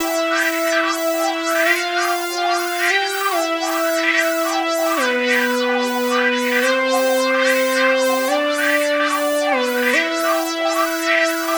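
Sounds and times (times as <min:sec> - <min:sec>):
power synth: 0:00.0 - 0:11.5.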